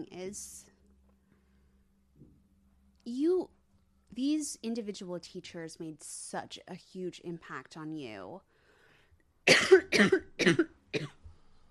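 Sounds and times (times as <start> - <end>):
speech: 0.0 - 0.7, 3.1 - 8.5, 9.5 - 11.2
wet phlegmy coughs: 9.5 - 11.2.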